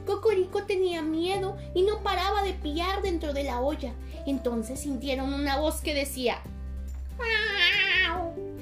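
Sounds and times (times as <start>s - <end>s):
speech: 0.2s - 6.5s
hairless cat meowing at the door: 7.2s - 8.4s.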